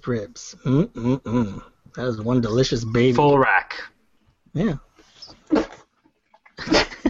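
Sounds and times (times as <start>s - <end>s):
speech: 0.0s - 3.9s, 4.5s - 4.9s
person sneezing: 5.5s - 5.8s.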